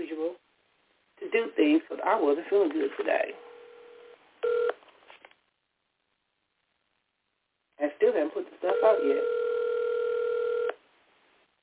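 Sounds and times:
speech: 1.4 - 3.4
phone line tone through a narrow telephone band: 3.3 - 4.8, 8.7 - 10.8
phone line click: 4.4 - 4.8, 9.8 - 10.8.

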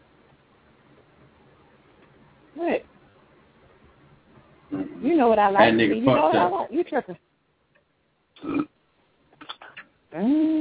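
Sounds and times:
speech: 2.6 - 2.9, 5.0 - 7.3, 10.2 - 10.5
person burping after drinking through a straw: 8.4 - 8.7.

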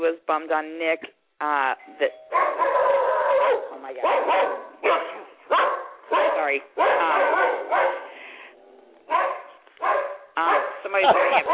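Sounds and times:
speech: 0.0 - 3.0, 10.9 - 11.5
dog barking at someone at the door: 2.3 - 8.2, 9.1 - 11.5.

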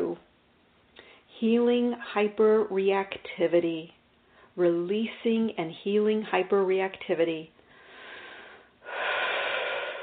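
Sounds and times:
speech: 1.4 - 4.0, 4.6 - 7.6
deep breathing during an energy healing session: 7.6 - 10.0.

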